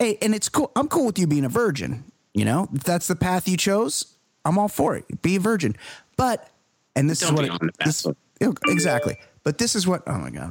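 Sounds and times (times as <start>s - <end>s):
speech: 0.0s - 10.5s
bright electronic phone chime through a sound board: 8.6s - 9.3s.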